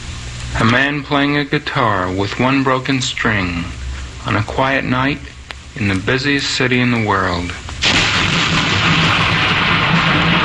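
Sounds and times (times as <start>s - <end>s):
speech: 0.6s - 7.6s
continuous rumble of thunder: 7.8s - 10.4s.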